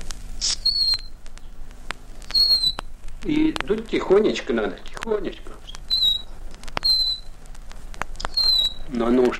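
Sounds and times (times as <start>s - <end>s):
decoy whistle imitating a nightingale in a forest: 0.4s - 1.2s, 2.2s - 2.9s, 5.8s - 7.3s, 8.3s - 8.9s
speech: 3.2s - 5.6s, 8.9s - 9.3s.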